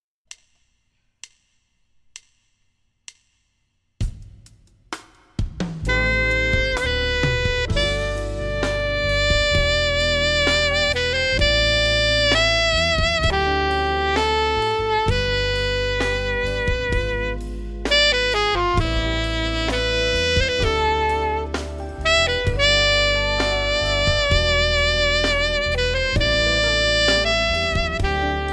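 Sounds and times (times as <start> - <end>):
alto sax smooth ballad: 5.8 - 28.5.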